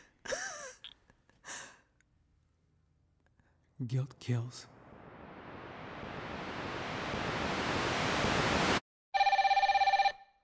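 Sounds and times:
speech: 3.8 - 4.8
broad rushing noise: 4.6 - 8.8
telephone bell ringing in a rapid trilling burst: 9.2 - 10.4.

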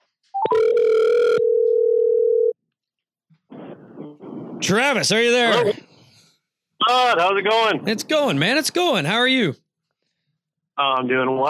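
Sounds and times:
telephone ring tone on an outgoing call: 0.4 - 2.6
speech: 4.7 - 5.8, 7.1 - 9.6, 10.8 - 11.4.

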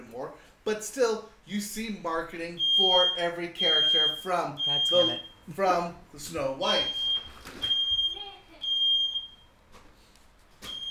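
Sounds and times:
speech: 0.2 - 7.7
fire alarm beeping: 2.6 - 5.5, 6.6 - 9.6, 10.7 - 10.8.

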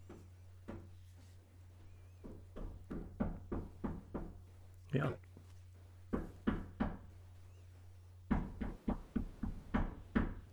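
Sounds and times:
faint low hum: 0.0 - 10.5
knocking on a room door: 2.2 - 4.7, 6.0 - 7.2, 8.2 - 10.5
speech: 4.9 - 5.3.

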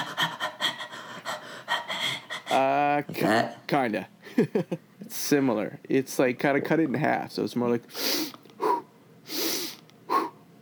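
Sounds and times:
person doing a fast breathing exercise: 0.0 - 2.7, 10.1 - 10.4
speech: 2.5 - 8.0.

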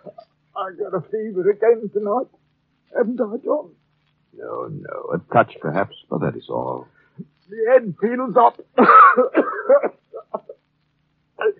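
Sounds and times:
speech: 0.6 - 10.0
raspy coughing fit: 8.8 - 10.6.

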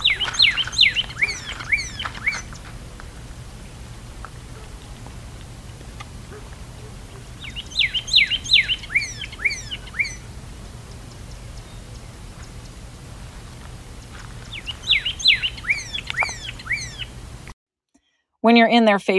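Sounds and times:
pyrrhuloxia singing whistled notes: 0.0 - 2.7, 7.2 - 12.7, 14.4 - 17.2
outdoor hiss: 0.0 - 17.6
speech: 18.4 - 19.1.

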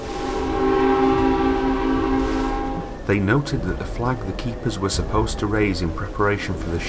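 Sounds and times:
ship's steam whistle blowing near a lighthouse: 0.0 - 3.0
speech: 3.1 - 6.8.

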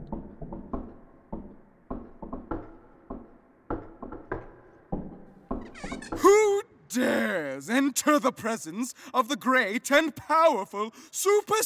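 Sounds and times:
rapid uneven knocking on a door: 0.1 - 6.2
speech: 5.8 - 11.6.

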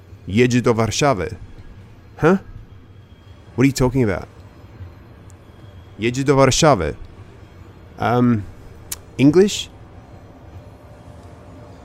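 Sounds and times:
train departing from station with rolling wagons: 0.0 - 11.8
speech: 0.2 - 1.5, 2.2 - 2.5, 3.6 - 4.4, 6.0 - 7.0, 8.0 - 8.5, 9.2 - 9.7.

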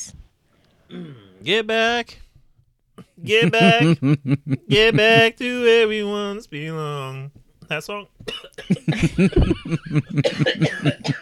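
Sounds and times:
person coughing from chocolate stuck in the throat: 0.9 - 1.3, 8.3 - 11.1
speech: 0.9 - 2.2, 3.2 - 11.1
laughter: 3.2 - 5.5, 8.8 - 11.0.

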